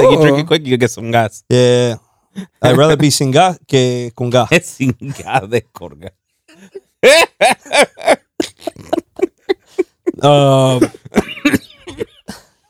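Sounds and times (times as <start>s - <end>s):
speech: 0.1s - 9.0s, 9.8s - 12.1s
person in a harsh hacking coughing fit: 10.6s - 12.6s.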